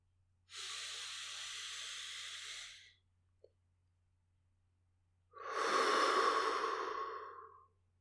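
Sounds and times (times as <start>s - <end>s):
slow deep breath held then exhaled: 0.5s - 3.0s, 5.4s - 7.7s.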